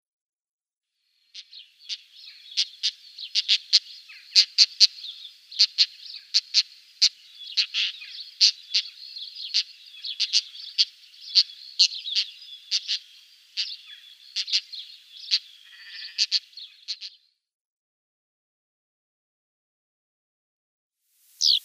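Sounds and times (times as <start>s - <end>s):
Pied Wheatear calls: 1.3s - 17.3s, 21.4s - 21.6s.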